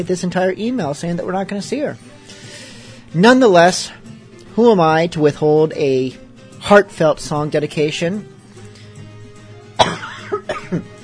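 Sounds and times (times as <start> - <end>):
speech: 0.0 - 2.2, 3.1 - 4.0, 4.6 - 8.3, 10.7 - 10.9
person coughing: 9.8 - 11.0.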